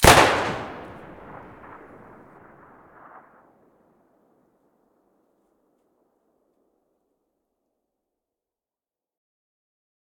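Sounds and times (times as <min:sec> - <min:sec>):
Saiga rifle firing with muzzle device: 0:00.0 - 0:03.3.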